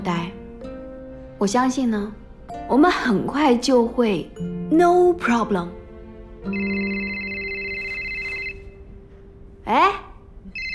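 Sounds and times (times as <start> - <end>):
speech: 0.0 - 0.4, 1.4 - 5.8, 6.4 - 7.2, 9.7 - 10.0
phone ringing with a steady electronic ringtone: 6.4 - 8.9, 10.5 - 10.7.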